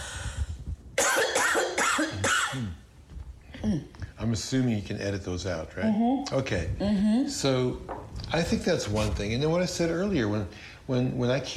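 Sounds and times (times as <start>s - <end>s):
harsh raspy coughing: 1.0s - 2.8s
speech: 4.3s - 11.5s.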